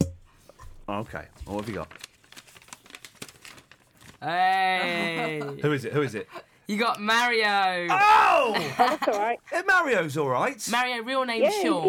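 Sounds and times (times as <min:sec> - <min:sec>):
speech: 0:00.9 - 0:02.1, 0:04.2 - 0:11.8
paper slips rustling and crinkling while stirred in a bowl: 0:00.9 - 0:04.3
laughter: 0:04.8 - 0:06.5, 0:08.3 - 0:09.5.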